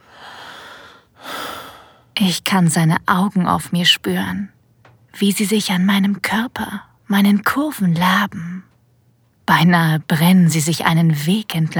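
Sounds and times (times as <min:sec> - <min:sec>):
soft breath: 0:00.0 - 0:02.2
man's sharp airy inhale: 0:00.1 - 0:02.1
speech: 0:02.2 - 0:04.6, 0:05.2 - 0:08.7, 0:09.5 - 0:11.7.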